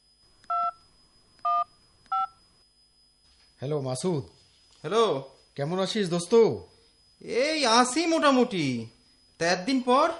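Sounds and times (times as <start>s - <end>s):
mobile phone keypad tones while dialing a number: 0.5s - 0.8s, 1.4s - 2.4s
speech: 3.6s - 10.1s.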